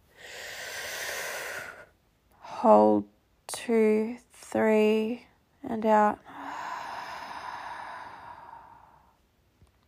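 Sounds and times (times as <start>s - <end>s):
deep breath in through the mouth: 0.1s - 1.9s, 6.3s - 9.2s
speech: 2.6s - 3.1s, 3.7s - 6.3s.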